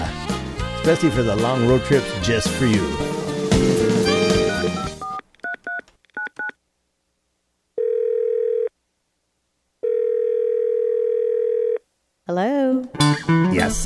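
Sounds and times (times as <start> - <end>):
music: 0.0 - 5.0, 12.9 - 13.8
speech: 0.8 - 3.9, 12.3 - 13.8
steady telephone tone: 4.2 - 6.6, 7.8 - 8.7, 9.8 - 11.8
keypad dialing beeps: 4.5 - 6.6.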